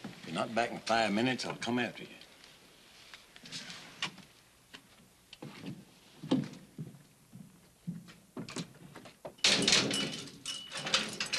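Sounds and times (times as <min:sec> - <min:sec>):
speech: 0:00.4 - 0:02.2
door swinging with a rattle: 0:09.4 - 0:11.3.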